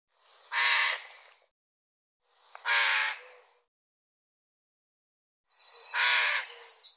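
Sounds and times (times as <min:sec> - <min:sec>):
bird hoarse grating caws: 0:00.5 - 0:01.3, 0:02.6 - 0:03.6, 0:05.9 - 0:06.7.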